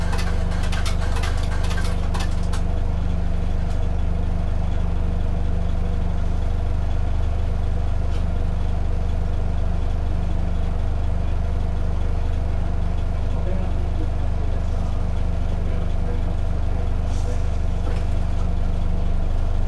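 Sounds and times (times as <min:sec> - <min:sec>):
clicks and rattles: 0:00.0 - 0:02.7
bus engine idling before departure: 0:00.0 - 0:19.6.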